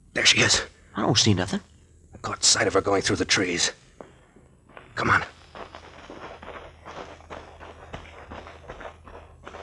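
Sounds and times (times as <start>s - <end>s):
low hum: 0.0s - 9.6s
speech: 0.2s - 3.8s, 5.0s - 5.4s
footsteps crunching and rustling through undergrowth in woods: 4.0s - 9.6s.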